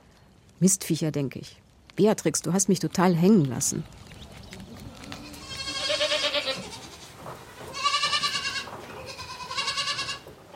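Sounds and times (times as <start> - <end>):
quiet outdoor noise: 0.0 - 10.5
speech: 0.6 - 4.1
goats bleating: 4.8 - 10.5.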